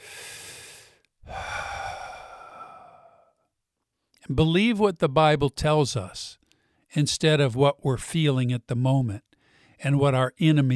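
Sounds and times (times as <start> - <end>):
person taking a deep breath: 0.0 - 3.4
speech: 4.3 - 10.7.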